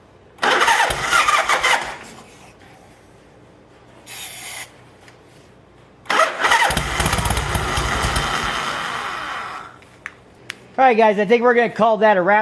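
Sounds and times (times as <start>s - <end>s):
motorcycle engine with new battery and carburetor trouble cranking and starting: 0.4s - 2.2s, 6.0s - 9.8s
speech: 10.8s - 12.3s.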